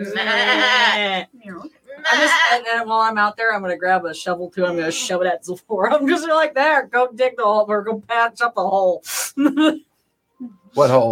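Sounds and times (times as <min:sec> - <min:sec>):
speech: 0:00.0 - 0:01.4, 0:02.1 - 0:11.1
person imitating a dairy goat's bleat: 0:00.0 - 0:02.6.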